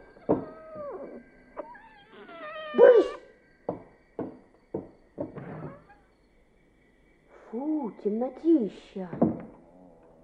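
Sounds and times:
cat meowing: 0:00.3 - 0:03.2
speech: 0:08.0 - 0:09.5.

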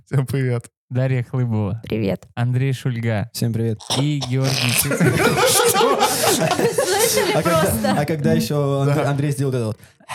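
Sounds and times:
speech: 0:00.0 - 0:10.1
person hissing like a snake: 0:03.8 - 0:07.0
several people chuckling and snickering: 0:03.8 - 0:08.0.

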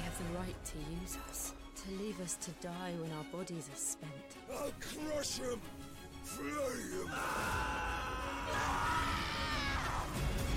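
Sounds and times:
speech: 0:00.2 - 0:09.2
game characters screaming in a played game clip: 0:06.7 - 0:10.2.

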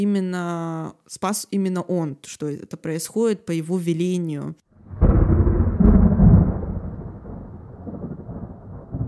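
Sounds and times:
speech: 0:00.0 - 0:05.1
thunder crack rolling into a deep heavy rumble: 0:04.8 - 0:09.0.

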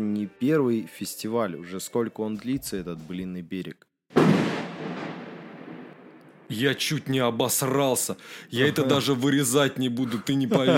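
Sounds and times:
speech: 0:00.0 - 0:04.4, 0:06.5 - 0:10.7
loud thunder crack and heavy rolling rumble: 0:04.2 - 0:06.5
laughter: 0:10.0 - 0:10.7.

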